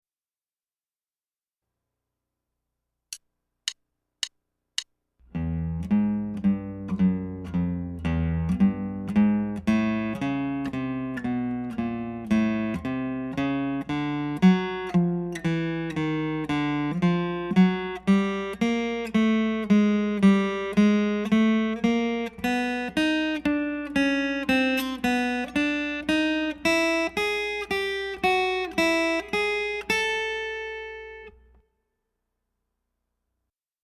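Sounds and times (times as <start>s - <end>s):
walking guitar line: 5.2s - 31.4s.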